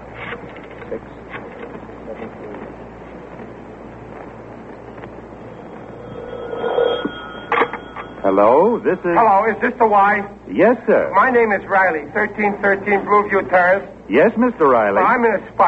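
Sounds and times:
steady hiss: 0.0 - 15.6
telephone ringing tone: 5.6 - 8.8
speech: 8.4 - 15.6.

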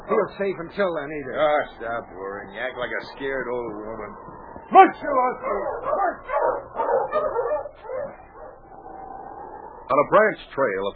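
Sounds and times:
speech: 0.1 - 7.9, 9.9 - 10.9
dog on a trail barking and yipping excitedly: 5.4 - 8.6.

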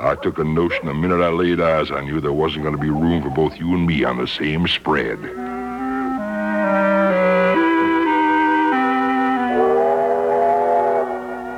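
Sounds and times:
speech: 0.1 - 5.6
steam train whistle blowing as the train pulls in: 6.6 - 11.5.

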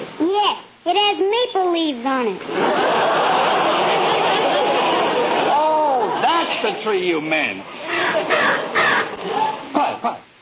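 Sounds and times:
speech: 0.9 - 3.4, 6.6 - 8.7
laughter: 2.4 - 6.8, 7.8 - 10.2
bird harsh raspy cries: 7.9 - 9.1.

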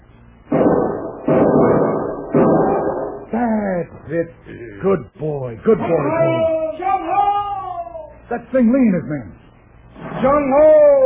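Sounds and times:
rifle gunshots: 0.5 - 3.3
speech: 3.8 - 6.6, 8.3 - 9.4, 10.2 - 10.9.

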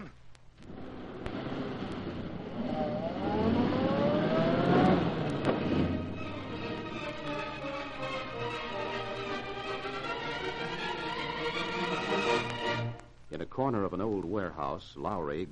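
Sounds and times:
car engine starting and accelerating hard through rising gears in a chase: 0.6 - 12.6
speech: 14.2 - 15.5.

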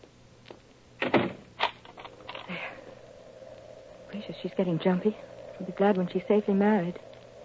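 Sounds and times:
door being shut and locked: 1.0 - 1.8
speech: 4.2 - 7.1.

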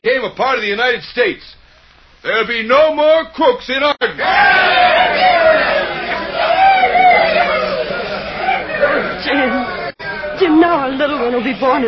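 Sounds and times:
speech: 0.0 - 1.6, 2.2 - 6.5, 10.4 - 11.8
large crowd cheering and shouting: 4.1 - 10.8.

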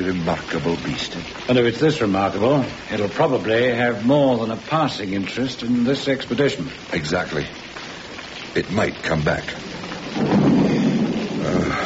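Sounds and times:
speech: 0.0 - 7.6, 8.5 - 10.6
rain falling: 0.0 - 11.8
deep rolling rumble of thunder: 9.7 - 11.8.

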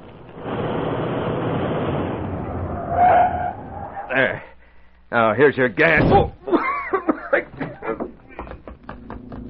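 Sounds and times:
steady rumble of a moving car: 0.0 - 4.1
shrill tire screech of a car braking hard to a stop: 0.3 - 4.3
speech: 4.1 - 4.5, 5.1 - 6.4
laughter: 6.4 - 8.8.

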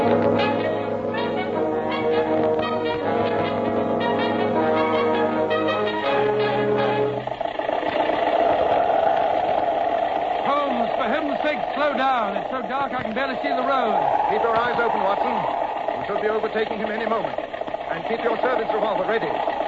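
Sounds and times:
early motor car engine running: 0.0 - 19.6
speech: 12.8 - 15.5, 16.1 - 17.4, 18.0 - 19.5.

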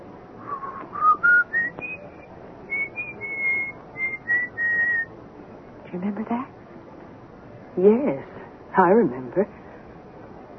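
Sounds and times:
person whistling an old tune: 0.5 - 5.1
speech: 5.9 - 6.6, 7.8 - 9.6.

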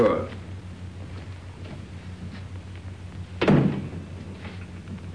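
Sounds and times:
speech: 0.0 - 0.4
door kicked shut: 3.4 - 4.2.

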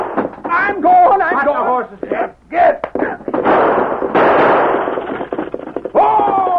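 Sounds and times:
noisy rush of commotion: 0.0 - 6.5
gunshot cracks: 3.3 - 5.6
people shouting: 5.9 - 6.5.

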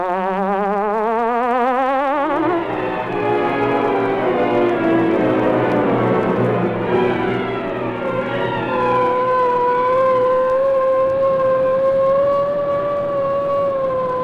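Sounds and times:
police car siren wailing: 0.2 - 14.2
low rumble of moving traffic: 2.3 - 14.2.

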